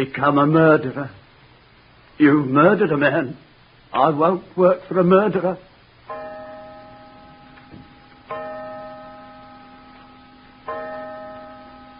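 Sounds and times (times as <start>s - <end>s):
speech: 0.0s - 1.2s, 2.2s - 5.7s
clock striking five o'clock: 6.1s - 11.9s.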